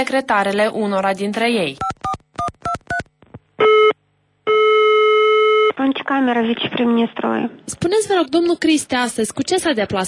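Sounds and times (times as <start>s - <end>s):
speech: 0.0s - 1.9s, 6.1s - 10.0s
telephone dialing beeps: 1.8s - 5.8s
telephone ringing tone heard through the handset: 3.6s - 5.7s.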